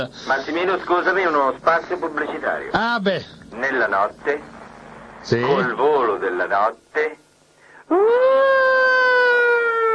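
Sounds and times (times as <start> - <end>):
speech: 0.0 - 4.6, 5.2 - 7.2
loud siren-like howl sound effect: 7.9 - 9.9.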